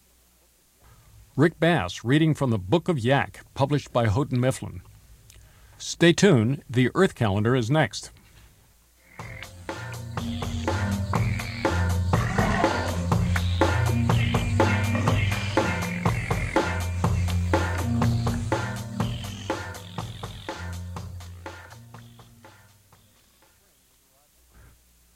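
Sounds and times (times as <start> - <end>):
speech: 1.4 - 4.9, 5.8 - 8.2
Cope's gray tree frogs and eastern gray tree frogs trilling in wetlands in southern Illinois: 9.0 - 24.0.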